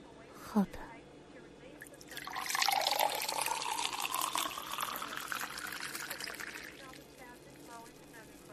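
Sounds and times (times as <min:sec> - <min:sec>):
speech: 0:00.5 - 0:00.8
1982 Lafite wine pouring into a glass: 0:01.8 - 0:07.2.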